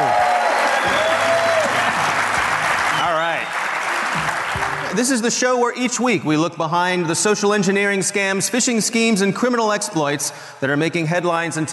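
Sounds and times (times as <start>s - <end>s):
audience whoops and cheering voices: 0.0s - 4.4s
live audience applauding: 0.0s - 5.3s
speech: 5.0s - 11.7s.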